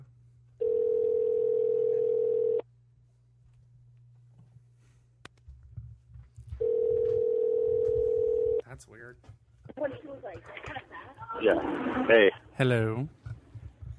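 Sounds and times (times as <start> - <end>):
telephone ringback tone during outgoing call: 0.6 - 2.6, 6.6 - 8.6
speech: 8.8 - 13.2.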